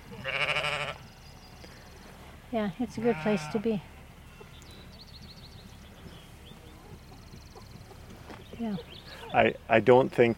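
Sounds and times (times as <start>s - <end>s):
sheep or lamb bleating in a sheep enclosure: 0.1s - 1.0s, 3.0s - 3.8s
speech: 2.5s - 3.9s, 8.6s - 10.3s.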